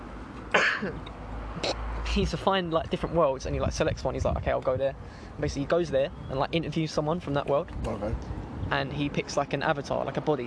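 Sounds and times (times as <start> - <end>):
person coughing: 0.5 - 1.0
rough throat clearing: 0.5 - 1.8
speech: 0.8 - 10.4.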